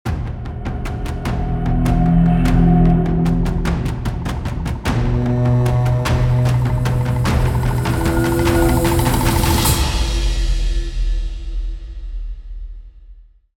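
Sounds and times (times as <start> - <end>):
epic musical transition crescendo: 0.1 - 11.4
war horn: 0.4 - 10.2.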